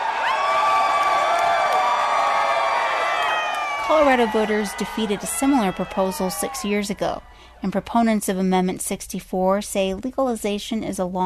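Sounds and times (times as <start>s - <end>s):
high whoops: 0.0s - 7.3s
large crowd cheering at election results: 0.0s - 8.2s
speech: 3.9s - 11.2s.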